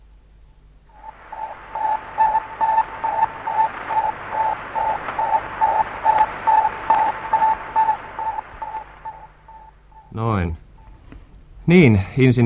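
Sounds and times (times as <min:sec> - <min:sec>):
static hiss: 0:00.0 - 0:10.3
Sputnik satellite radio beeping: 0:00.9 - 0:10.2
speech: 0:11.7 - 0:12.4.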